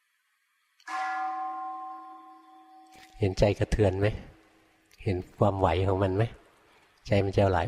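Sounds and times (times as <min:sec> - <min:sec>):
single deep bell struck: 0:00.9 - 0:03.1
speech: 0:03.2 - 0:04.3, 0:05.0 - 0:06.4, 0:07.0 - 0:07.6.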